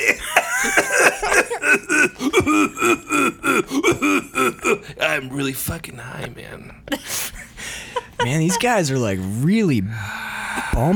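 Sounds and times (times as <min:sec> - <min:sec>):
person coughing: 0:00.0 - 0:05.2
person giggling: 0:00.0 - 0:05.2, 0:06.2 - 0:08.8
speech: 0:05.4 - 0:07.2, 0:08.3 - 0:10.2, 0:10.8 - 0:10.9.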